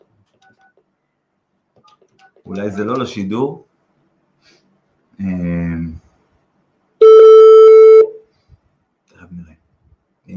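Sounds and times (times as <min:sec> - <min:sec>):
speech: 0:02.2 - 0:03.7, 0:05.2 - 0:06.0
telephone line tone while a call is placed: 0:07.0 - 0:08.1.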